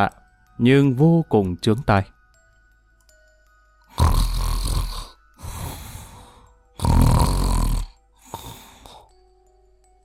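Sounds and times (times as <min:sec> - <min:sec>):
speech: 0:00.0 - 0:02.2
prisoner snoring loudly in a jail cell: 0:03.9 - 0:05.8, 0:06.8 - 0:09.0.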